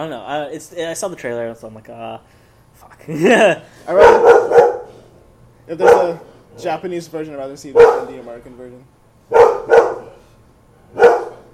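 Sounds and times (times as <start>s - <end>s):
speech: 0.0s - 4.6s, 5.7s - 9.0s
dog barking: 3.9s - 5.0s, 5.8s - 6.2s, 7.7s - 8.2s, 9.3s - 10.2s, 10.9s - 11.5s.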